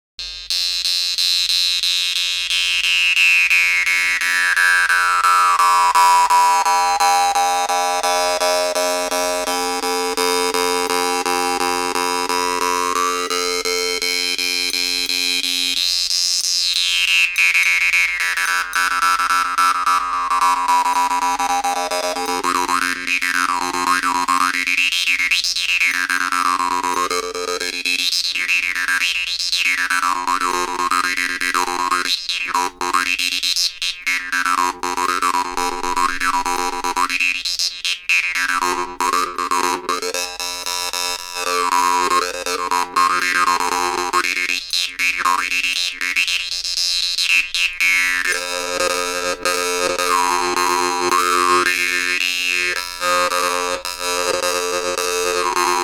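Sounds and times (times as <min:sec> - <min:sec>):
jew's harp improvisation: 0:00.6 - 0:55.8.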